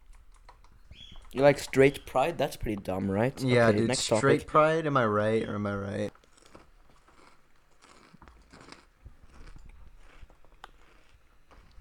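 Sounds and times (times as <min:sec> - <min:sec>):
speech: 0:01.3 - 0:06.1
person chewing crisp snack chips: 0:06.1 - 0:11.7.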